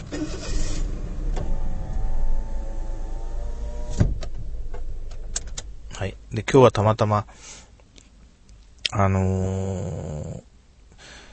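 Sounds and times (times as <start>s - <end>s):
car power window whirring shut with electric motor hum: 0.0s - 5.7s
low rumble: 0.0s - 11.3s
speech: 6.0s - 7.6s, 8.9s - 10.5s.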